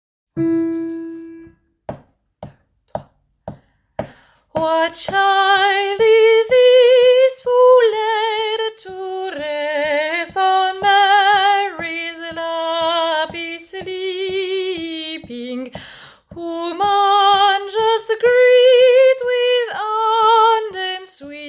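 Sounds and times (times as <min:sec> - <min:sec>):
soprano singing: 0:04.5 - 0:21.4.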